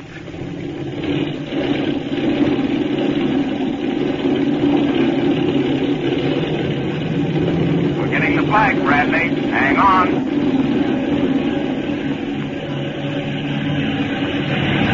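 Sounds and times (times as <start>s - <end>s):
aircraft engine revving up for takeoff: 0.0s - 14.9s.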